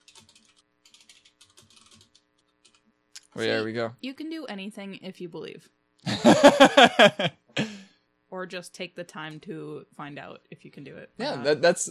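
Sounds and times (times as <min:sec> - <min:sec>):
typing on a computer keyboard: 0:00.0 - 0:02.8
speech: 0:03.4 - 0:05.8, 0:06.4 - 0:07.4, 0:08.4 - 0:11.8
laughter: 0:06.1 - 0:07.8.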